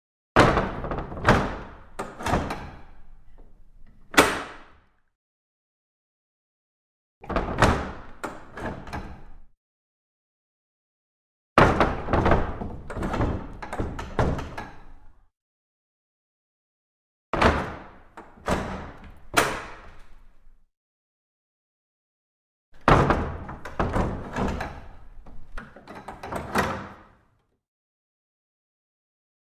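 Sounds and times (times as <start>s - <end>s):
large wooden window shutters: 0.4s - 4.7s, 7.2s - 9.5s, 11.6s - 15.2s, 17.4s - 20.6s, 22.8s - 27.4s.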